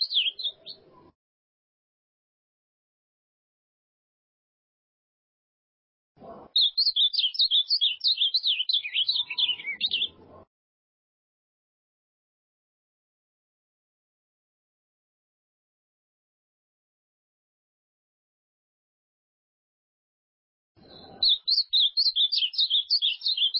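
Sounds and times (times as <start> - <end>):
ultramarine grosbeak singing: 0.0 - 1.0, 6.5 - 10.4, 20.8 - 23.5.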